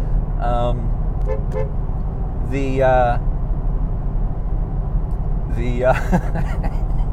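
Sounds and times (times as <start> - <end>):
steady low rumble: 0.0 - 7.1
car horn honking: 1.2 - 1.8
laughter: 5.9 - 7.1.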